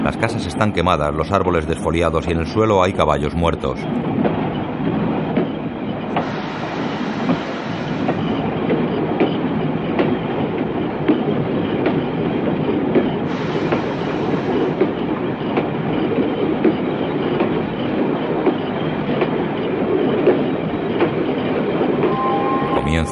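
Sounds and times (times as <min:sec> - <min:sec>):
speech: 0:00.0 - 0:04.3
slowly moving train rumbling: 0:00.0 - 0:23.0.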